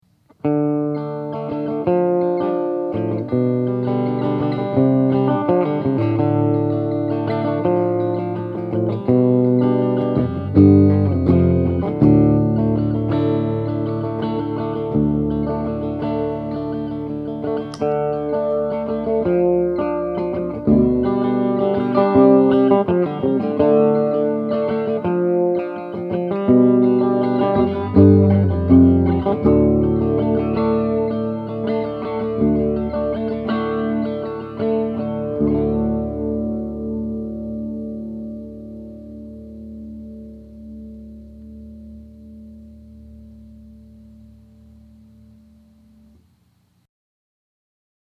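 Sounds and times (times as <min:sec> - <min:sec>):
guitar with subtle chorus effect from a CE-2 pedal: 0:00.0 - 0:46.8.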